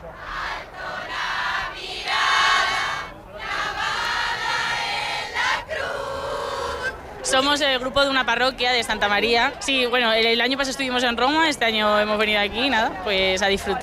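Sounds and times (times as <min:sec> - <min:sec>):
crowd of faithful singing hymns outdoors: 0:00.0 - 0:07.2
speech: 0:07.3 - 0:13.8.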